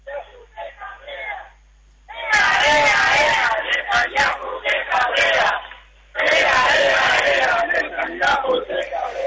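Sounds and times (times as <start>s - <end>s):
quieter voices of protest crowd: 0.0s - 9.2s
large protest crowd chanting slogans in unison: 2.1s - 9.2s
massed shouting of protest crowd: 2.1s - 9.2s.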